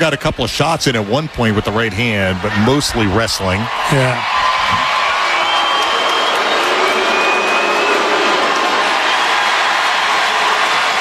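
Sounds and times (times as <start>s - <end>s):
speech: 0.0s - 4.9s
large hockey arena crowd cheering after a fight: 0.0s - 10.9s
whistles from hockey arena crowd: 5.2s - 8.3s.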